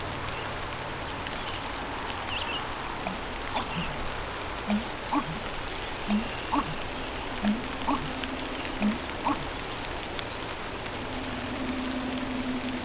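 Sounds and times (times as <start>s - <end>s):
steady hiss of light rain: 0.0s - 12.8s
American bittern low gulping call: 3.0s - 9.7s.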